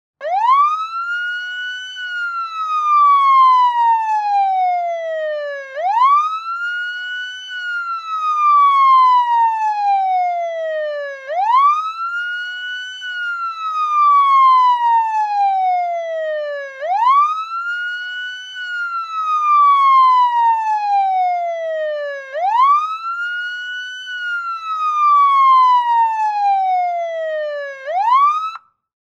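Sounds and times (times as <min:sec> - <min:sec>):
emergency police siren wailing: 0:00.2 - 0:28.8.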